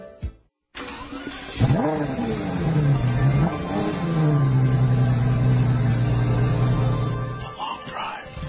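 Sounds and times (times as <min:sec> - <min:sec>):
Chevrolet Camaro muscle car engine revving: 0:00.8 - 0:07.6.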